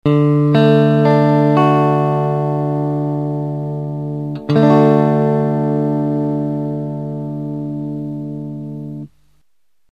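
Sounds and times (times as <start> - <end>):
guitar playing in D major: 0.1 - 9.2.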